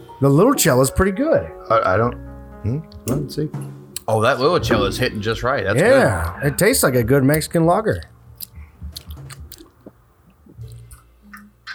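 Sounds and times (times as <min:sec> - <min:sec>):
speech: 0:00.2 - 0:08.1
wet chewing of peanut butter: 0:06.6 - 0:11.7.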